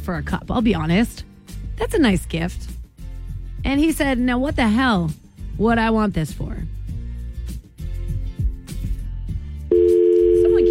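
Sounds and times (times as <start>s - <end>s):
speech: 0.1s - 2.8s, 3.6s - 6.8s
telephone dial tone on a studio phone line: 9.7s - 10.6s.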